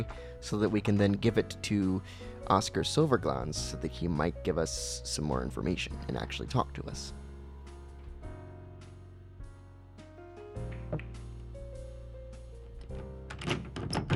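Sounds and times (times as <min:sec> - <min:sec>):
speech: 0:00.0 - 0:07.2
sustained video game music: 0:00.0 - 0:14.1
bar door opening in a video game: 0:10.6 - 0:11.2, 0:12.7 - 0:14.1
knock: 0:10.7 - 0:11.2.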